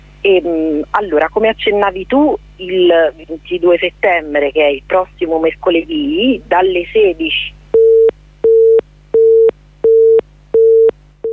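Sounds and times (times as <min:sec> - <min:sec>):
speech: 0:00.2 - 0:07.6
telephone busy tone after a dropped call: 0:07.8 - 0:11.3.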